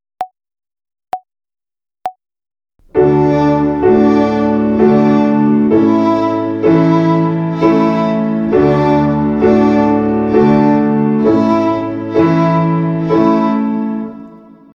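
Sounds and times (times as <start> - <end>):
violin finger exercise on the D string in triple meter: 2.8 - 14.6.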